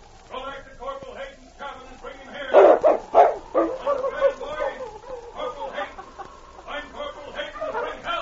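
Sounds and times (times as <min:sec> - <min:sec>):
laughter: 0:02.4 - 0:08.2
dog barking: 0:02.5 - 0:05.8
dog yelping and whining: 0:02.6 - 0:05.4.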